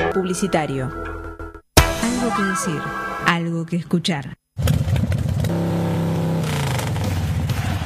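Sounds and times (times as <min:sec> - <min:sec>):
speech: 0:00.1 - 0:01.1, 0:02.2 - 0:04.4
motorcycle engine revving: 0:05.1 - 0:07.8.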